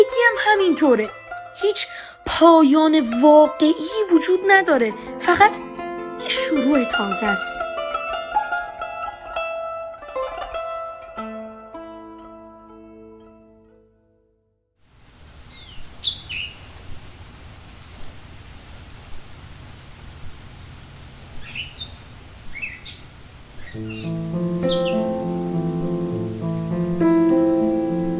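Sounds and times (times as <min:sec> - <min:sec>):
rain falling: 0:00.0 - 0:10.5, 0:14.8 - 0:28.1
soft hiss: 0:00.0 - 0:12.7, 0:14.9 - 0:28.1
gentle tonal music: 0:00.0 - 0:14.5, 0:23.8 - 0:28.1
speech: 0:00.3 - 0:07.7
distant bird chirping: 0:21.4 - 0:25.5.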